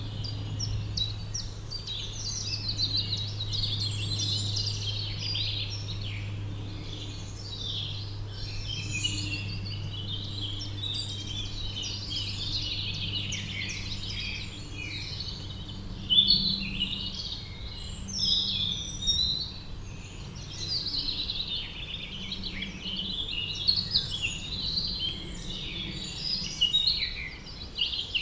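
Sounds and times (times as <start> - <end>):
many birds chirping in a spring forest near Hiltrup in Germany: 0.0 - 28.2.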